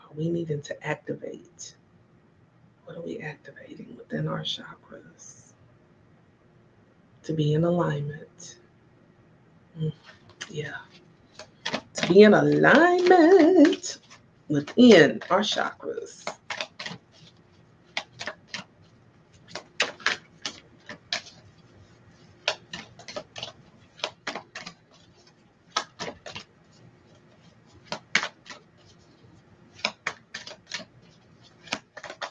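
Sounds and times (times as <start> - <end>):
speech: 0.2 - 1.8, 2.9 - 5.5, 7.2 - 8.6, 9.8 - 11.0, 12.0 - 16.4
sticky deck of cards being shuffled: 9.9 - 32.2.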